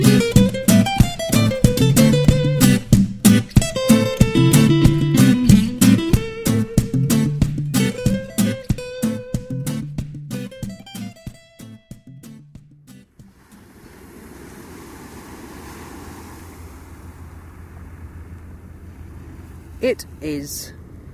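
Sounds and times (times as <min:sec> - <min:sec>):
struck musical notes: 0:00.0 - 0:13.3
sea waves washing on the shore: 0:13.2 - 0:21.1.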